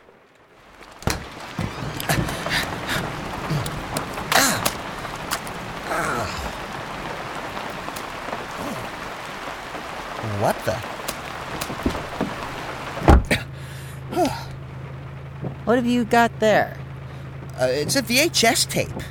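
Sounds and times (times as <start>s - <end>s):
steady rain falling outside on hard surfaces: 0.0s - 19.0s
speech: 10.4s - 10.9s, 15.7s - 16.8s, 17.6s - 19.0s.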